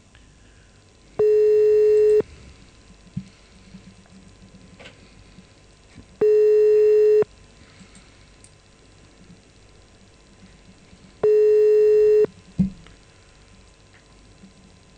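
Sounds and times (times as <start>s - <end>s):
telephone line buzzing tones on a call to a police station: 1.2s - 2.3s, 6.2s - 7.3s, 11.2s - 12.3s.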